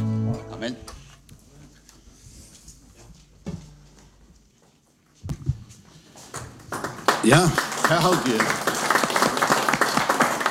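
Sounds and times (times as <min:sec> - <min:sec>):
speech: 0:00.6 - 0:01.0, 0:07.3 - 0:08.7
crowd applauding: 0:06.6 - 0:10.4.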